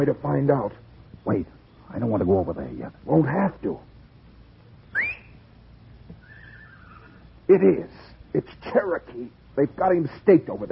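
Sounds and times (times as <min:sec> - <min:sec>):
speech: 0:00.0 - 0:03.9, 0:07.5 - 0:10.7
short rising whistle: 0:04.9 - 0:05.4.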